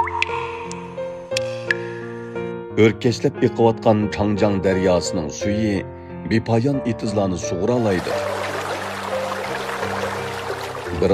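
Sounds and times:
water drops plinking: 0.0s - 1.8s, 8.0s - 11.1s
speech: 2.8s - 8.5s, 11.0s - 11.1s.

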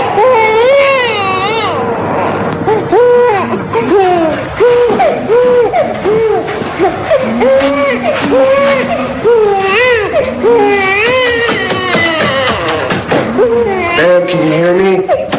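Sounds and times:
baby crying loudly: 0.0s - 15.3s.

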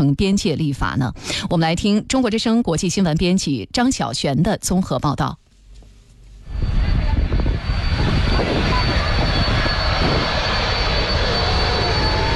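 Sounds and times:
speech: 0.0s - 5.4s
airplane jet engines roaring during takeoff from Amsterdam: 6.5s - 12.3s.

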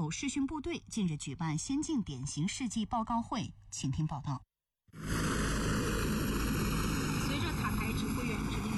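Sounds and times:
speech: 0.1s - 5.2s
helicopters powering up and lifting off: 5.0s - 8.7s
steady high helicopter turbine whine: 5.0s - 8.7s.

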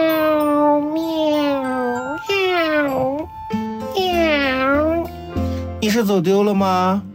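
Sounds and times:
cat meowing: 0.0s - 3.2s, 4.0s - 5.1s
speech: 5.8s - 7.1s.

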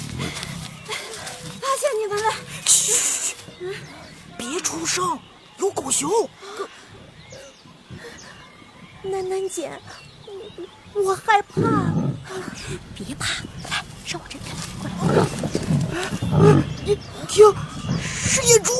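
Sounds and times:
people talking: 0.9s - 6.7s, 9.1s - 18.7s
wild boar grunting and snorting: 11.5s - 12.8s, 13.7s - 18.1s.

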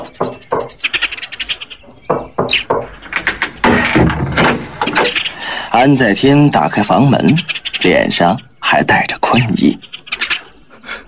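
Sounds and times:
birds chirping at daybreak: 0.0s - 11.0s
solid knocks on a door at daybreak: 0.1s - 0.8s, 2.1s - 2.9s, 3.6s - 5.1s
speech: 5.8s - 9.9s.

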